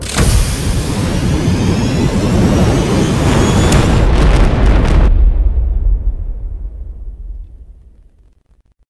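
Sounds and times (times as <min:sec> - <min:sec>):
launch: 0:00.0 - 0:08.5.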